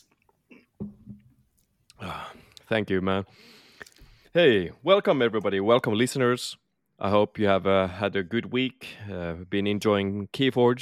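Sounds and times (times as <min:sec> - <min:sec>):
speech: 0:02.1 - 0:03.6, 0:04.4 - 0:10.8
person sipping water: 0:03.7 - 0:04.1.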